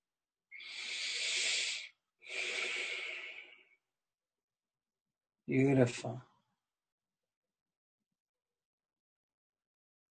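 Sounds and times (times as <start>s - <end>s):
slow breathing during a guided breathwork exercise: 0.6s - 3.8s
speech: 5.5s - 6.3s.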